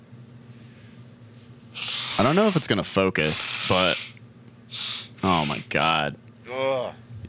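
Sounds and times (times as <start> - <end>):
low steady hum: 0.0 - 7.2
nose blowing: 1.8 - 4.1, 4.7 - 5.7
speech: 2.2 - 7.0.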